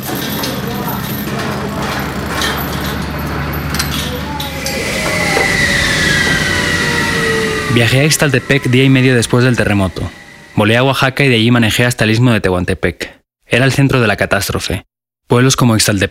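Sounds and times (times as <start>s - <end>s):
heavy trucks, tractors and backhoes clearing earthquake rubble in Ixtaltepec, Oaxaca: 0.0s - 11.3s
high mechanical whine: 0.0s - 11.6s
speech: 7.8s - 16.0s.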